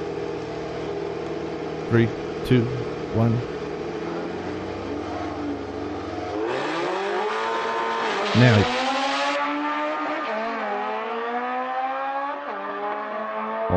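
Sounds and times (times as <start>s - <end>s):
Honda race car engine idling, revving and accelerating away: 0.0s - 13.7s
speech: 1.9s - 3.6s, 8.4s - 8.8s
voices counting down: 1.9s - 3.6s, 8.4s - 8.7s.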